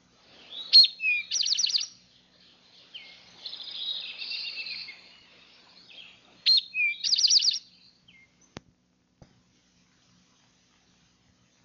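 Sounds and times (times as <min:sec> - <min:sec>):
rufous-sided towhee song: 0:00.3 - 0:08.6.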